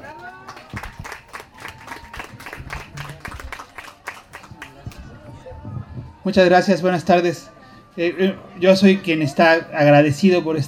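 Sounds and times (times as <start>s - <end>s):
room full of people applauding: 0.0s - 5.2s
faint murmur of voices: 0.0s - 10.6s
speech: 6.3s - 10.6s.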